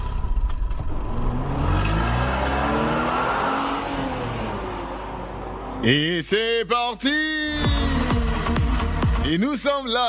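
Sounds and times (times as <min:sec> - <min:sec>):
car engine starting and revving: 0:00.0 - 0:06.4, 0:07.5 - 0:09.1
speech: 0:05.8 - 0:07.4, 0:09.3 - 0:10.0.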